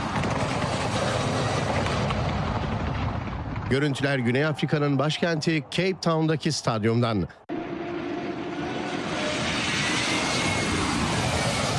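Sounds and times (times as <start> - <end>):
two passenger airliners flying low over a stadium roof in Cape Town: 0.0 - 6.4, 7.3 - 11.7
speech: 3.7 - 7.4.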